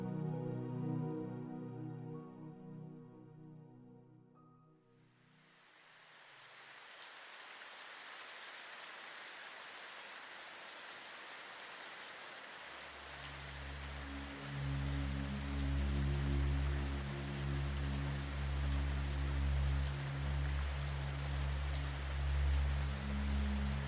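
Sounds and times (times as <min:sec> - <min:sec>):
soft music: 0:00.0 - 0:05.5, 0:13.2 - 0:23.8
heavy rain pattering on pavement: 0:05.5 - 0:23.8.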